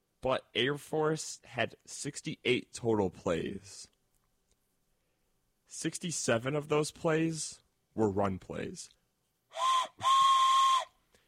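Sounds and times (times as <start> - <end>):
speech: 0.2 - 3.9, 5.7 - 10.2
steam-style train whistle blasts: 9.5 - 11.0.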